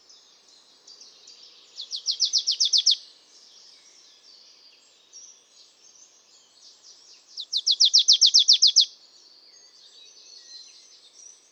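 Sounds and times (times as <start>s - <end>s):
Marsh tit Poecile palustris calling: 7.6s - 8.9s.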